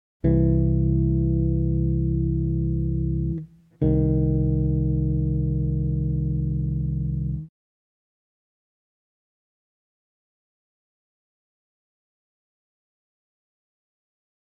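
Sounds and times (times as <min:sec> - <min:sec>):
bass playing tenths: 0:00.2 - 0:07.5.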